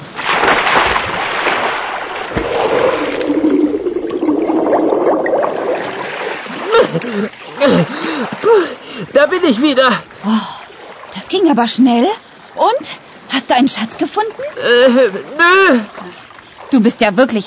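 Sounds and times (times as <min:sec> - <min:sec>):
splash of someone jumping into water: 0:00.0 - 0:07.6
churning bubbling water: 0:00.6 - 0:08.6
speech: 0:09.2 - 0:10.5, 0:11.5 - 0:12.8, 0:13.5 - 0:17.4.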